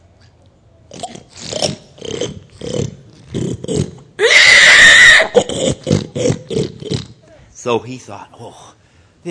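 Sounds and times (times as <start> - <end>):
person imitating pigs oinking: 0.9 - 4.5, 5.3 - 7.4
loud drawn-out imitated pig squeal: 1.0 - 6.2
speech: 7.6 - 9.3.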